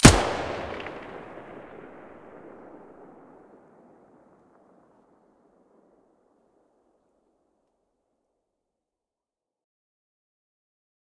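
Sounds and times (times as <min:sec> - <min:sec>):
weapon muzzle blasts: 0:00.0 - 0:03.9.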